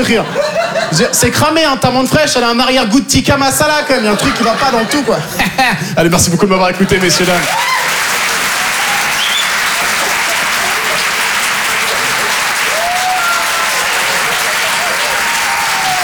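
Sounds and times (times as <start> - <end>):
laughter: 0.0 - 1.6, 3.6 - 16.0
speech: 0.0 - 8.2
comedy club audience applauding a comedian: 6.8 - 16.0.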